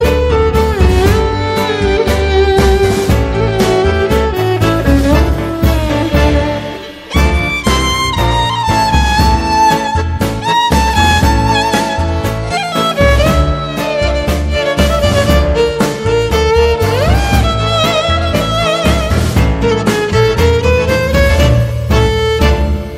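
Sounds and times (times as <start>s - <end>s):
classical tango song ringtone: 0.0s - 22.9s.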